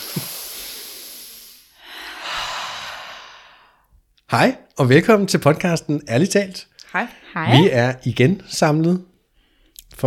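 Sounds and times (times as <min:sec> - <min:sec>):
deep breath in and long breathy exhale: 0:00.0 - 0:03.9
speech: 0:04.3 - 0:09.1.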